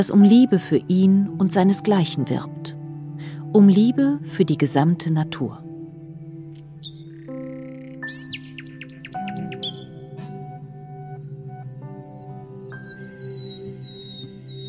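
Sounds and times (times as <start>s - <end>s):
speech: 0.0s - 2.8s, 3.5s - 5.6s
nightingale singing: 6.5s - 14.6s.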